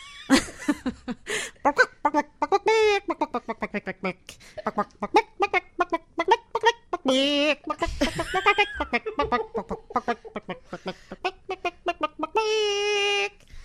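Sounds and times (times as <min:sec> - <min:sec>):
laughter: 0:00.0 - 0:01.5, 0:07.8 - 0:11.1
person imitating a chicken clucking with their voice: 0:01.6 - 0:13.4.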